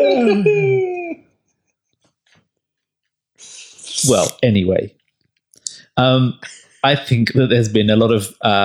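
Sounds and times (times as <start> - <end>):
speech: 0.0 - 0.9, 3.4 - 5.0, 6.0 - 8.6
person doing an exaggerated loud roaring yawn imitation: 0.0 - 1.2.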